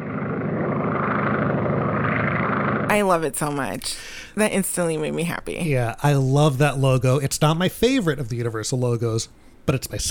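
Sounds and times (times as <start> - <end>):
small propeller plane engine droning and sputtering: 0.0 - 3.0
speech: 2.9 - 10.0.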